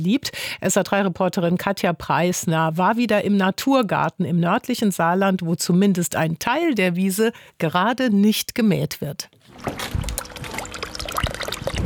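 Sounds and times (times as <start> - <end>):
speech: 0.0 - 10.1
water splashing and trickling behind a house in a garden: 9.5 - 11.8.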